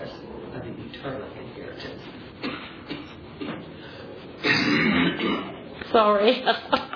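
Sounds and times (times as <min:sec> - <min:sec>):
speech: 0:01.0 - 0:02.1, 0:05.9 - 0:06.8
harsh coughs: 0:02.4 - 0:03.5, 0:04.4 - 0:05.5.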